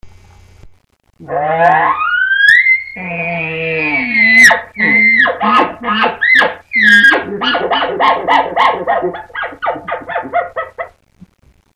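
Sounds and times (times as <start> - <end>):
elk challenge call: 1.6 - 10.8.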